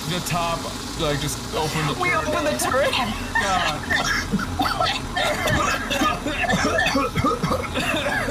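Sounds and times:
steady noisy background: 0.0 - 8.2
speech: 0.1 - 8.2
chuckling: 3.0 - 8.2
person coughing inside a smoking car: 3.9 - 8.2.

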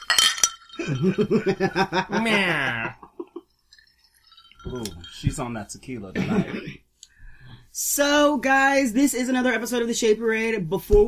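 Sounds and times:
drinking glasses clinking in a toast: 0.0 - 6.8
people laughing: 0.8 - 3.5
speech: 0.9 - 3.0, 4.6 - 6.8, 7.8 - 11.0.

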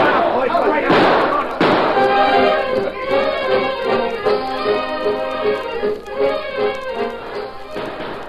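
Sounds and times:
gunshots fired in the woods by hunters as a signal: 0.0 - 4.4
steady low noise: 0.0 - 8.2.

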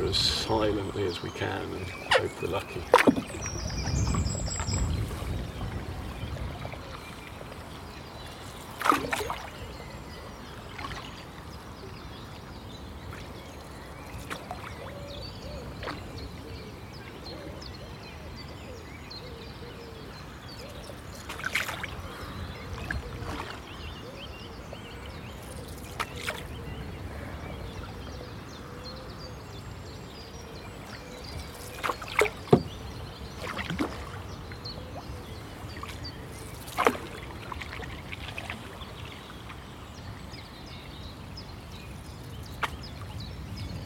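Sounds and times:
canoe paddles dipping and pulling through water: 0.0 - 17.2, 20.3 - 28.6, 29.2 - 43.8
faint birdsong: 0.0 - 43.8
speech: 0.1 - 3.6
paddle knocks against a canoe hull: 32.2 - 32.8.

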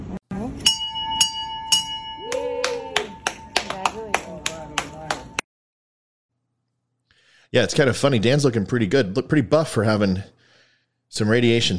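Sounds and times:
bell ringing: 0.6 - 5.4
cheering voices: 2.2 - 5.3
applause: 2.3 - 5.4
speech: 7.6 - 10.4, 11.1 - 11.7.

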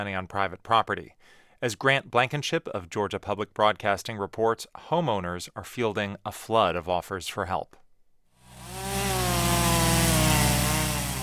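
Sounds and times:
speech: 0.0 - 7.8
chainsaw cutting storm-downed trees in Valdosta Georgia: 8.4 - 11.2.

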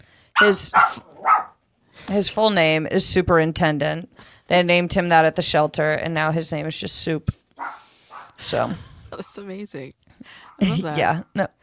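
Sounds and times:
speech: 0.4 - 1.1, 2.1 - 7.4, 8.4 - 11.6
small Chihuahua dog yapping: 0.4 - 1.6, 7.6 - 8.4.

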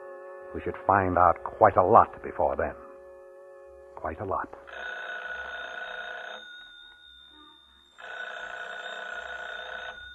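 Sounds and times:
speech: 0.5 - 2.8, 4.0 - 4.9
telephone bell ringing: 4.6 - 10.1.

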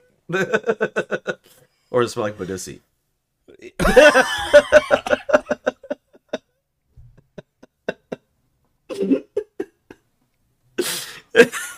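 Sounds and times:
speech: 0.3 - 1.1, 2.0 - 2.9, 3.8 - 5.1
laughter: 3.8 - 6.5, 7.2 - 8.3
woman coughing and choking: 8.9 - 9.5.

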